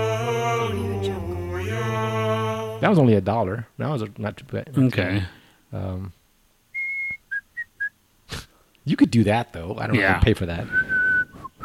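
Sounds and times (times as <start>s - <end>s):
low vocal sound: 0.0s - 3.0s
speech: 2.8s - 6.2s, 8.8s - 10.9s
person whistling a short clear melody: 6.8s - 7.9s, 10.7s - 11.6s.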